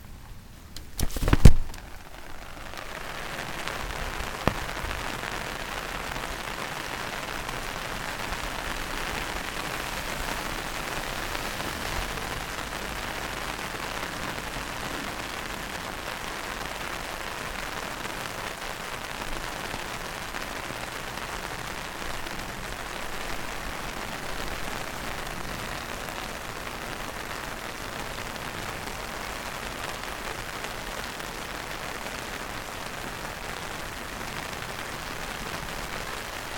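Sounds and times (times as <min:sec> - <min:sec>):
rain on an umbrella: 0:00.7 - 0:36.5.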